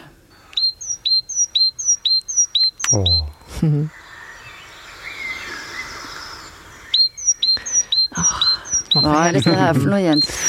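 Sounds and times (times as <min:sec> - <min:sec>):
bird whistling spring courtship chirps: 0:00.0 - 0:10.4
speech: 0:02.9 - 0:04.0, 0:09.0 - 0:10.4
person laughing: 0:03.5 - 0:03.9.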